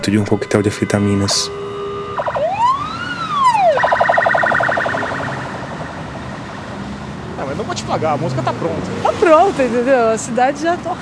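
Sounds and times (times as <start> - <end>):
speech: 0.0 - 2.4, 7.7 - 11.0
ambulance siren in the city: 0.0 - 7.2.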